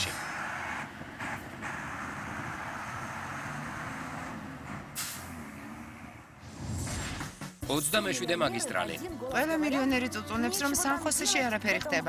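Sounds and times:
broadband road noise: 0.0 - 12.0
city bus engine rumbling: 0.0 - 12.0
air brake and door pneumatics hisses: 5.0 - 5.3
speech: 7.7 - 12.0.

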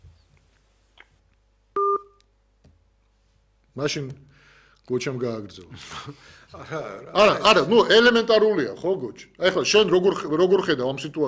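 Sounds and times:
faint low noise: 0.0 - 11.2
short loud electronic telephone tone: 1.8 - 2.2
speech: 3.8 - 4.3, 4.9 - 11.2.

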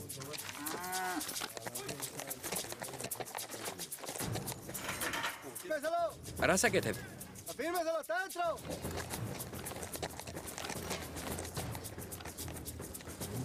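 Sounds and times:
cattle lowing at a rodeo in Chile: 0.3 - 4.8, 8.6 - 13.4
cow mooing at a rodeo in Chile: 0.5 - 1.3
speech: 5.8 - 9.3.

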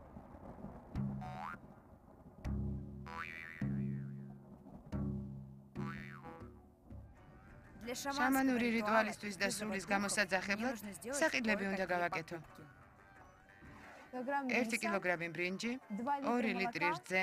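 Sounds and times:
shaman's ritual drum booming with springy metallic twangs: 0.9 - 1.6, 2.4 - 7.2
speech: 7.9 - 12.7, 14.1 - 17.2.

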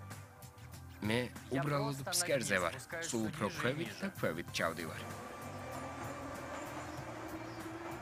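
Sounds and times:
speech: 1.0 - 5.3
subway train rumbling in Boston's old underground metro: 5.0 - 8.0.

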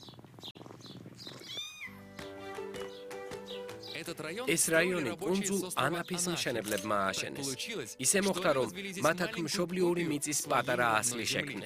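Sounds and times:
cats meowing in a whitewashed Greek-style neighborhood of narrow lanes: 1.0 - 2.5
speech: 4.0 - 11.6.

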